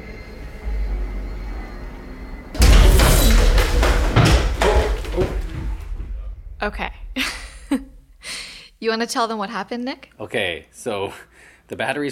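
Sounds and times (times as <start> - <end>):
low hum: 0.6 - 8.8
objects clattering, knocking and rattling as they tumble: 2.6 - 8.2
person tripping over equipment case and falling with heavy thud: 2.6 - 8.3
speech: 6.6 - 7.9, 8.8 - 12.0.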